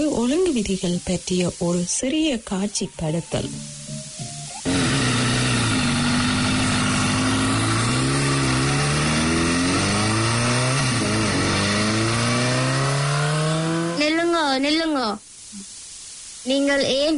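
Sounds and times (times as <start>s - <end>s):
speech: 0.0s - 3.7s, 16.4s - 17.1s
motorbike engine revving: 4.6s - 14.2s.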